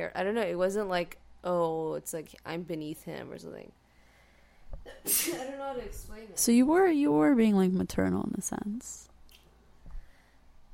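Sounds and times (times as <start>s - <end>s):
speech: 0.0s - 3.8s, 4.8s - 9.1s
stifled sneeze: 4.8s - 5.6s.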